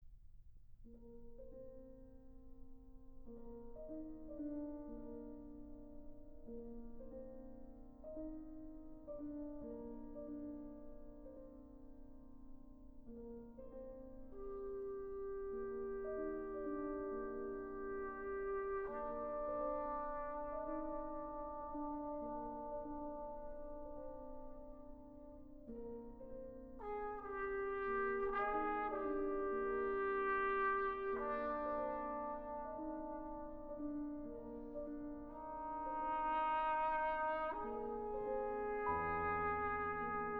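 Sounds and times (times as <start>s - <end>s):
piano playing: 0.8s - 40.3s
trombone playing: 14.4s - 24.5s, 26.8s - 40.3s.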